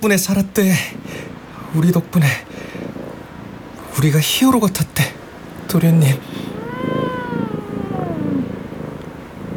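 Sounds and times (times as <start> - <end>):
speech: 0.0 - 2.6, 4.0 - 5.1, 5.7 - 6.5
cat purring: 0.8 - 9.5
cat meowing: 5.6 - 9.1.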